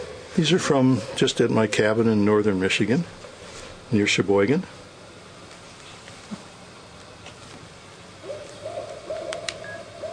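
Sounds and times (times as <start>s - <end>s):
barred owls hooting in the evening in northern Michigan: 0.0s - 2.6s, 8.2s - 10.1s
steady outdoor hiss: 0.0s - 10.1s
speech: 0.4s - 3.2s, 3.9s - 4.8s.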